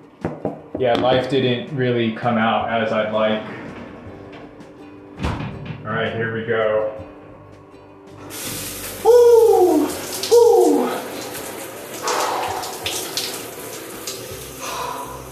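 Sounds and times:
speech: 0.8 - 3.6, 6.0 - 7.0
shower water spraying: 8.2 - 15.3
person letting out startled exclamations: 9.0 - 11.2.

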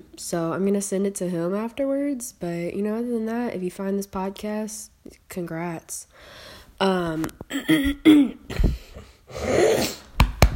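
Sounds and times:
speech: 0.0 - 10.0
wheezy breaths: 6.1 - 6.8, 8.5 - 10.1
person coughing throatily: 7.5 - 10.0
person making harsh nasal snorts: 7.5 - 10.1.

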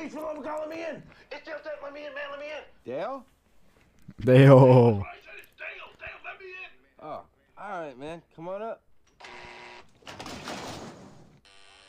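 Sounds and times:
speech: 0.0 - 3.4, 4.1 - 5.2, 7.0 - 9.4
harsh electric apartment door-entry buzzer: 9.2 - 10.6, 11.4 - 11.8.

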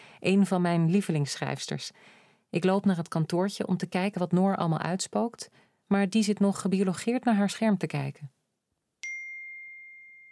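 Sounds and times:
speech: 0.2 - 8.4
single bright electronic ding: 9.0 - 10.3.

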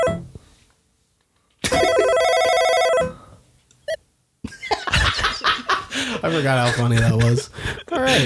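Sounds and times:
loud electronic telephone ringtone trilling: 0.0 - 0.2, 1.7 - 3.2
laughter: 4.5 - 8.2
speech: 6.2 - 8.2.

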